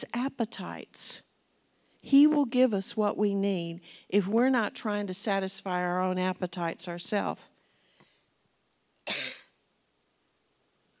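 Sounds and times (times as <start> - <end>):
speech: 0.0 - 1.3, 2.0 - 7.5
faint breath: 7.5 - 8.4
person coughing harshly: 9.0 - 9.6.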